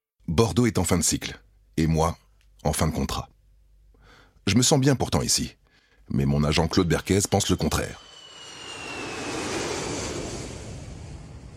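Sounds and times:
speech: 0.3s - 3.3s, 4.4s - 8.1s
airplane flying to Nice roaring past: 6.4s - 11.5s.

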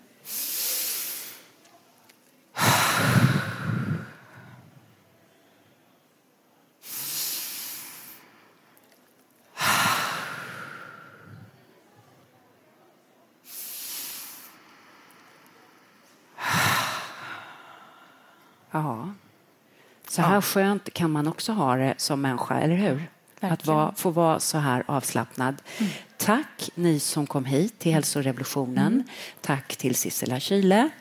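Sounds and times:
group taking deep slow relaxing breaths during a relaxation exercise: 2.6s - 4.8s, 6.8s - 8.7s, 9.5s - 11.6s, 13.5s - 18.7s, 25.6s - 26.2s
speech: 18.7s - 19.2s, 20.2s - 30.9s.

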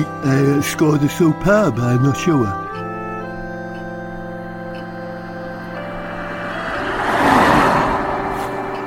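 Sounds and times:
speech: 0.2s - 2.6s
car engine approaching outside a house: 3.0s - 8.8s.

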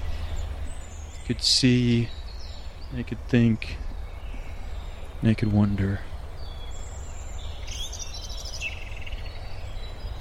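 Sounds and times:
birds chirping and trilling outdoors: 0.0s - 10.1s
low rumble of noise: 0.0s - 10.1s
speech: 1.3s - 2.2s, 2.9s - 3.8s, 5.2s - 6.1s.

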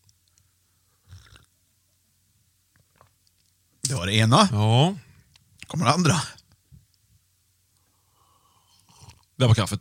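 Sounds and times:
slurping carrot juice from a glass: 1.0s - 1.5s
faint mouth and swallowing noises: 1.0s - 1.6s
speech: 3.9s - 5.0s, 5.7s - 6.4s, 9.4s - 9.7s.

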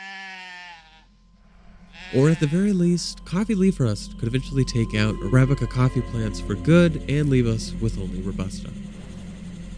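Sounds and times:
goat bleating: 0.0s - 1.1s, 1.9s - 2.7s
speech: 2.1s - 9.0s.

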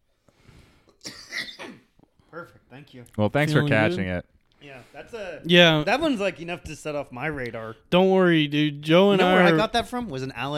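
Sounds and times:
loud raspy harsh cough: 1.0s - 2.0s
speech: 2.4s - 10.5s.

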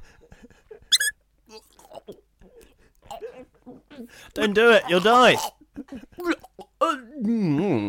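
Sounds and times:
squeaky toy squeaking: 0.9s - 1.2s
speech: 4.0s - 5.6s, 7.2s - 7.8s.

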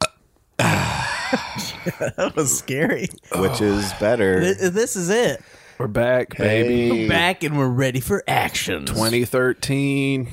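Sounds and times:
long loud rough burp: 0.0s - 1.4s, 3.3s - 4.3s
speech: 1.3s - 10.3s.

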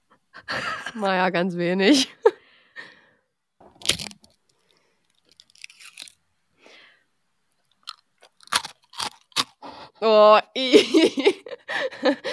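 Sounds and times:
speech: 0.6s - 2.2s, 10.1s - 12.3s
crunching and chewing food: 3.7s - 6.2s, 7.5s - 9.8s.

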